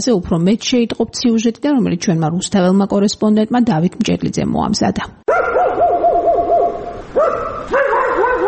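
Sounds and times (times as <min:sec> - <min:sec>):
speech: 0:00.0 - 0:05.8
stray dogs barking and yelping on a city street in Rustavi, Georgia, at dusk: 0:05.3 - 0:08.4.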